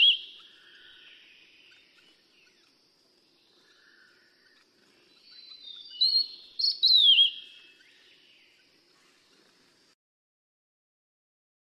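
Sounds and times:
Steere's liocichla whistling: 0:00.0 - 0:00.6, 0:05.3 - 0:07.7.

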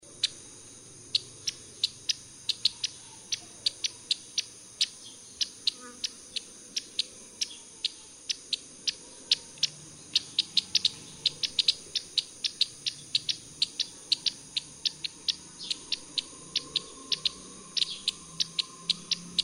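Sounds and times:
white-rumped munia: 0:00.0 - 0:19.4.

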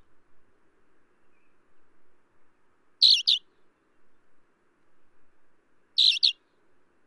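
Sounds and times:
Alpine accentor chirping: 0:03.0 - 0:03.4, 0:06.0 - 0:06.4.

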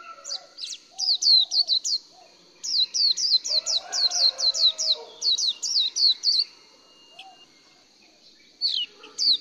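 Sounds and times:
white-eye song of high thin down-slurred twittering notes: 0:00.0 - 0:09.3.

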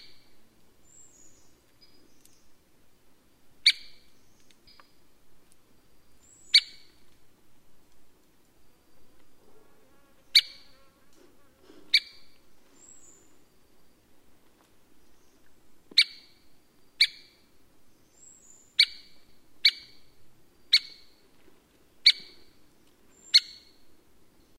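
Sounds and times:
white-backed woodpecker: 0:03.6 - 0:05.0, 0:06.5 - 0:07.0, 0:11.8 - 0:12.4, 0:15.3 - 0:17.4, 0:18.6 - 0:20.1, 0:20.7 - 0:21.1, 0:22.0 - 0:22.6, 0:23.2 - 0:23.8.

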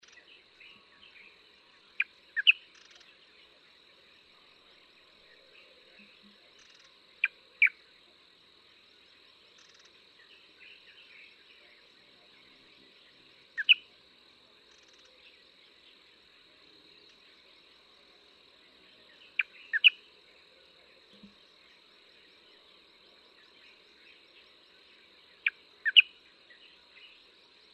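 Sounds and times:
light-vented bulbul calling: 0:02.0 - 0:03.0, 0:13.6 - 0:13.8, 0:19.3 - 0:20.0, 0:25.4 - 0:26.1.

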